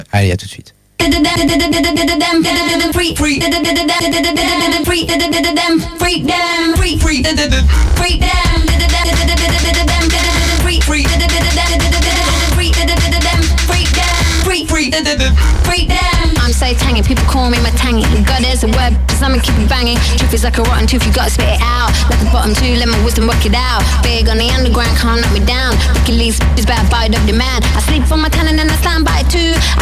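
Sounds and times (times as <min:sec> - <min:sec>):
speech: 0:00.0 - 0:12.3, 0:14.6 - 0:29.8
loud hip-hop track with dense busy instrumental: 0:01.0 - 0:29.8
deep booming bass line: 0:06.8 - 0:14.6, 0:15.2 - 0:29.8.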